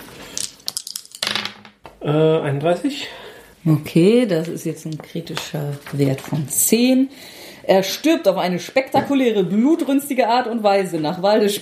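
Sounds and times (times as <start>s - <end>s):
dice clattering across a tabletop during a tabletop role-playing game: 0.3s - 2.0s
speech: 2.0s - 11.6s.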